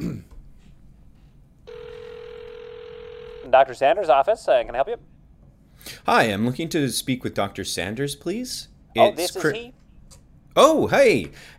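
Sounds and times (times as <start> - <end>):
electronic ringback tone on an outgoing call to a pediatrician's office: 1.7 - 3.5
speech: 3.5 - 5.1, 5.9 - 9.8, 10.6 - 11.5.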